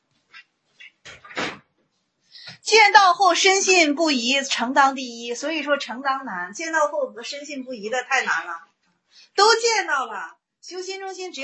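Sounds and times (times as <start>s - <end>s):
door closing: 1.0s - 1.7s
speech: 2.7s - 8.7s, 9.4s - 11.4s.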